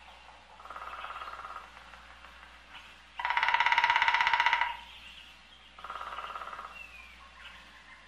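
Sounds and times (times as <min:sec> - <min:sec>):
woodpecker drum rolls of rapid taps: 0:00.0 - 0:05.0, 0:05.8 - 0:06.8.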